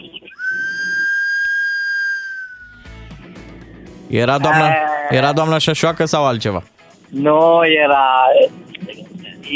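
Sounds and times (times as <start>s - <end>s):
narrow-gauge steam train whistle blast: 0.4s - 3.0s
speech: 4.1s - 8.6s.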